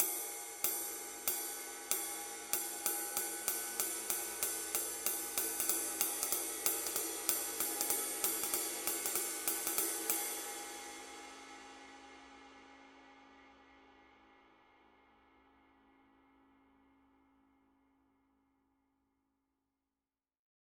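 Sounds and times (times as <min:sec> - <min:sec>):
medium flat ride cymbal pattern: 0:00.0 - 0:16.3.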